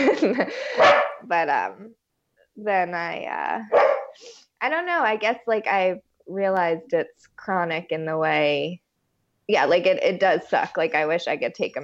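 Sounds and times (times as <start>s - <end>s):
speech: 0.2s - 2.0s, 2.6s - 8.8s, 9.5s - 11.8s
dog barking: 0.7s - 1.3s, 3.7s - 4.2s.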